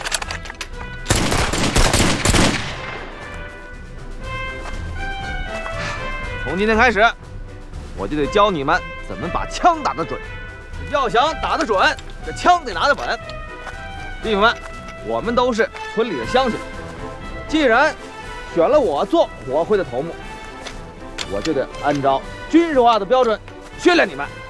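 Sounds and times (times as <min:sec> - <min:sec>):
volley of rifle fire from Taiyuan arsenal copies of Japanese Type 38 rifle: 0:00.8 - 0:03.7
people speaking: 0:06.4 - 0:07.2, 0:08.0 - 0:10.2, 0:10.9 - 0:13.2, 0:14.2 - 0:16.6, 0:17.5 - 0:20.2, 0:21.2 - 0:24.3.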